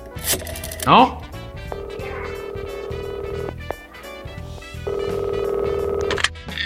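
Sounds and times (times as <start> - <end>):
speech: 0.2 - 1.2
old rotary dial telephone buzzing and ringing: 1.7 - 6.2.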